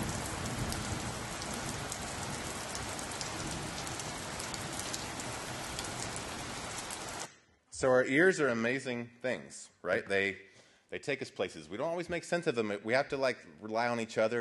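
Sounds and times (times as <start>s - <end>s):
steady rain pattering on a hard surface: 0.0s - 7.3s
speech: 7.8s - 14.3s.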